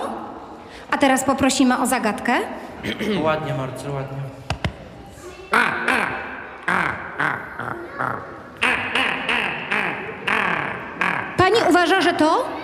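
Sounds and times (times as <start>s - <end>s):
speech: 0.8s - 4.4s, 11.9s - 12.6s
person imitating a common raven's call: 5.5s - 12.2s.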